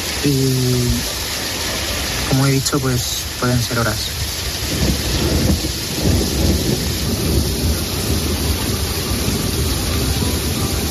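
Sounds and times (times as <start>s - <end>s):
steady heavy rain hissing: 0.0s - 10.9s
speech: 0.2s - 1.2s, 2.3s - 6.6s
deep rolling thunder rumbling: 4.3s - 10.9s.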